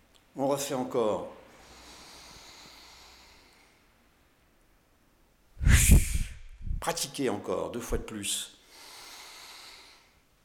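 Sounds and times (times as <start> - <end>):
speech: 0.4 - 1.4, 6.8 - 8.6
deep breath during a fitness exercise: 1.5 - 4.0, 8.6 - 10.3.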